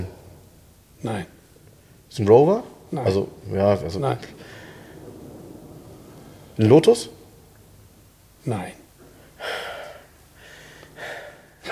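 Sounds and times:
speech: 1.0 - 1.4, 2.1 - 4.6, 6.6 - 7.2, 8.4 - 8.8
heavy labored breathing: 4.2 - 5.4, 9.0 - 11.6.

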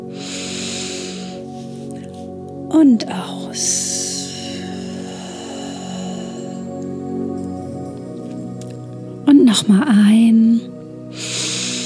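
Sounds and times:
deep breath drawn in through the nose: 0.0 - 2.5, 4.0 - 8.2, 11.1 - 11.8
steady droning tone: 0.0 - 11.8
speech: 2.7 - 4.0, 9.5 - 10.7.

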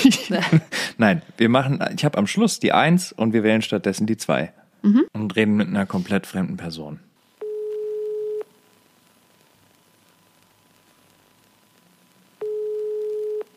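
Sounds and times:
quiet hiss: 0.0 - 13.5
speech: 0.3 - 7.1
telephone ringback tone on an unanswered call: 7.4 - 8.5, 12.4 - 13.5.

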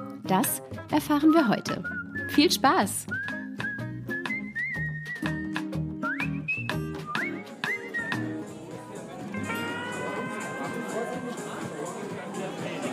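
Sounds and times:
speech: 0.3 - 3.4
whistled or tooted melody: 1.0 - 8.6
outdoor summer festival crowd chatter at a medical center in sunny weather: 7.0 - 12.9.

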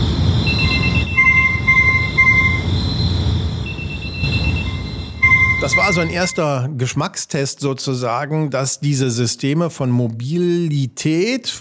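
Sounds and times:
dense wash of noise: 0.0 - 6.6
many e-scooter horns blaring with shrill electronic tones: 0.4 - 3.0, 3.6 - 6.4
speech: 5.7 - 11.5.

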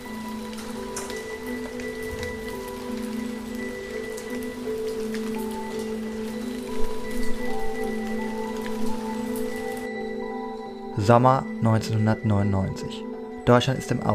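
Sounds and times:
steady rain pattering on asphalt: 0.0 - 9.9
speech: 11.0 - 14.1.

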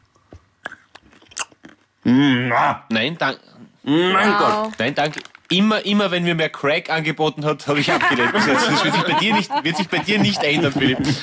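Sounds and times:
chewing: 0.1 - 2.0
person crunching a cinnamon almond: 0.6 - 2.0
speech: 2.0 - 11.2
laughter: 7.7 - 11.2.

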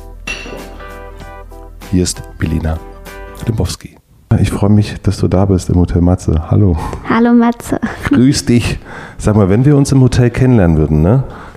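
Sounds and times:
glasses clinking in a toast: 0.2 - 1.0
speech: 1.9 - 11.4.

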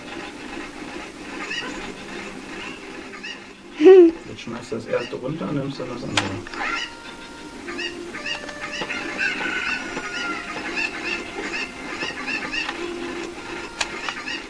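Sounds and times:
flock of chickens clucking: 0.0 - 14.4
speech: 4.4 - 6.9.

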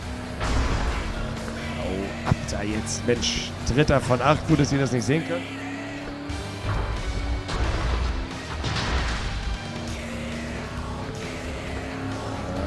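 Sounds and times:
heavy crunching smashing impacts of a video game car crash: 0.0 - 12.6
humming engine drone in a racing video game: 0.0 - 12.6
car crashing into a house in a racing video game: 0.4 - 1.2, 6.6 - 9.6
speech: 2.3 - 5.6.

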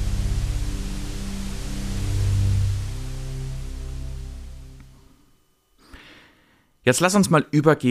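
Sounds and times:
heavy low rumble: 0.0 - 5.2
dense filtered white noise hiss: 0.0 - 7.8
speech: 6.9 - 7.8.

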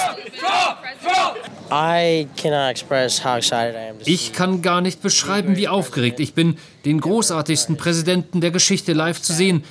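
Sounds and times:
strained sustained yells from several voices: 0.0 - 1.5
protesters shouting loudly at a rally: 0.0 - 1.6
noisy background of many people: 0.0 - 9.7
speech: 1.7 - 9.7.

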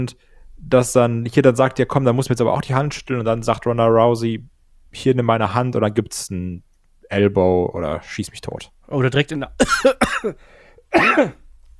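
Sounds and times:
speech: 0.0 - 11.4
single short harsh cough: 9.6 - 11.4.

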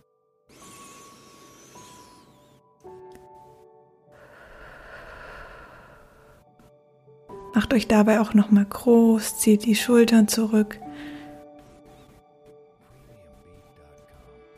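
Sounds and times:
slow deep breathing in through the nose and out through the mouth: 4.1 - 6.7, 10.8 - 11.6
speech: 7.6 - 11.1.

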